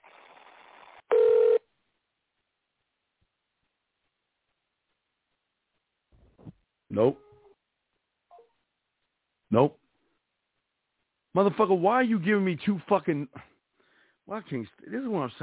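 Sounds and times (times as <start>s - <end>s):
electronic telephone tone: 1.1s - 1.6s
speech: 7.0s - 7.2s, 9.5s - 9.8s, 11.4s - 13.5s, 14.3s - 15.4s.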